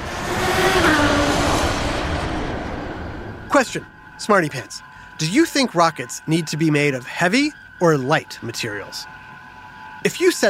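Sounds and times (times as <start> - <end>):
car engine revving and accelerating: 0.0 - 4.6
speech: 3.5 - 9.2, 10.0 - 10.4.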